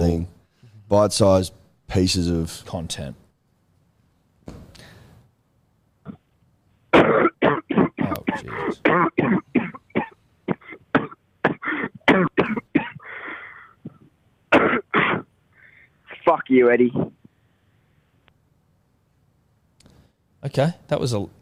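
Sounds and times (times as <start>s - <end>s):
speech: 0.9s - 3.2s, 16.5s - 17.1s, 20.4s - 21.4s
man clearing throat: 6.0s - 6.3s, 7.0s - 13.2s, 13.8s - 15.3s
man coughing: 6.9s - 15.3s.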